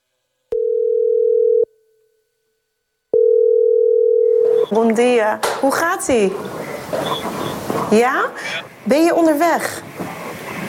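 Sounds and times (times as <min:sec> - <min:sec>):
telephone ringing tone as a call is placed: 0:00.5 - 0:01.7, 0:03.2 - 0:04.7
speech: 0:04.7 - 0:09.8.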